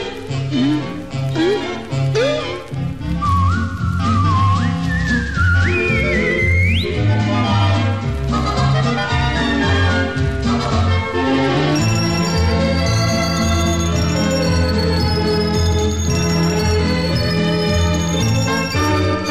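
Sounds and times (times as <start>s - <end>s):
busy instrumental backing with steady low rhythmic notes: 0.0s - 19.2s
person whistling a bright tune: 3.2s - 7.1s, 11.8s - 19.2s.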